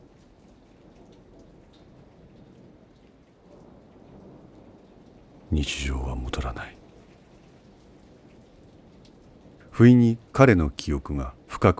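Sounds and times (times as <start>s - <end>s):
rain drumming on a ceiling: 0.0s - 11.7s
speech: 5.5s - 6.8s, 9.8s - 11.7s.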